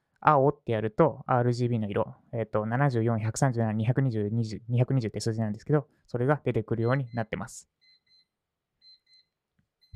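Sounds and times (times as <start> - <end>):
speech: 0.2 - 7.8
pomodoro timer alarm high electronic beeps: 6.8 - 9.9.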